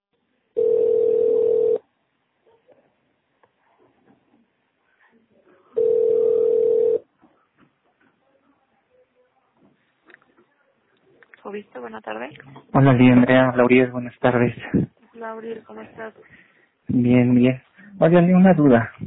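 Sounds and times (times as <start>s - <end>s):
telephone tones on a call line to an office number: 0.6s - 1.8s, 5.8s - 7.0s
speech: 11.5s - 19.0s.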